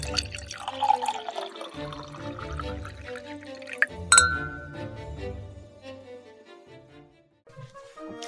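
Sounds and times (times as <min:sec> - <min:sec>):
wine pouring and trickling into a glass: 0:00.0 - 0:05.0
soft tonal music: 0:03.0 - 0:06.0
bright glass clink: 0:03.8 - 0:05.0.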